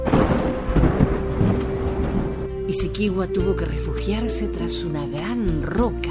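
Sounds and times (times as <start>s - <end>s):
steady hiss of heavy rain: 0.0s - 2.6s
deep rolling thunder in a thunderstorm: 0.0s - 2.8s
speech: 2.7s - 6.0s.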